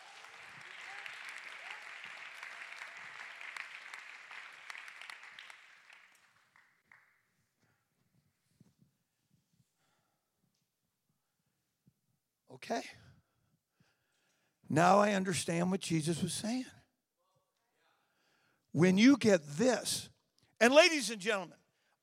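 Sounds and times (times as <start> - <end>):
crowd clapping hands in dense applause in a large room: 0.0 - 7.2
speech: 12.6 - 13.0, 14.8 - 16.8, 18.8 - 22.0.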